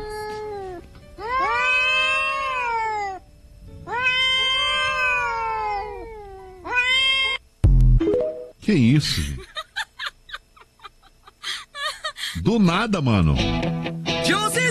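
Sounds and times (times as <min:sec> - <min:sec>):
cats caterwauling in a fight: 0:00.0 - 0:07.4
speech: 0:08.7 - 0:09.5, 0:12.5 - 0:14.6
laughter: 0:09.1 - 0:12.2.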